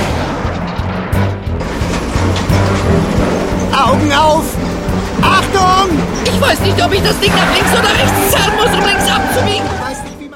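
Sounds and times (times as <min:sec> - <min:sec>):
rocket-powered car blasting off with a loud continuous roar: 0:00.0 - 0:10.1
speech: 0:04.0 - 0:04.6, 0:05.8 - 0:09.9.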